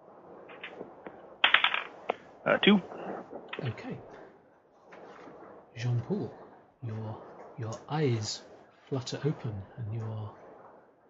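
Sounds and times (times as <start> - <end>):
dice clicking as they are picked up: 1.4 - 2.0
speech: 2.5 - 3.0, 3.6 - 4.2, 5.8 - 10.4.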